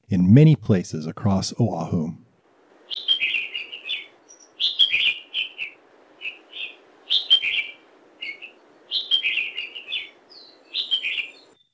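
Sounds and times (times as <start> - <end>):
faint background noise: 0.0 - 11.7
speech: 0.1 - 2.2
red-whiskered bulbul high-pitched warbling song: 2.9 - 11.6.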